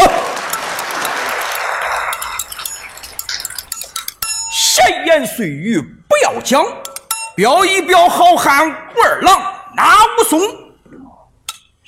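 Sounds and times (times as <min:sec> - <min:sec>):
audience applause: 0:00.0 - 0:03.3
speech: 0:05.2 - 0:11.2.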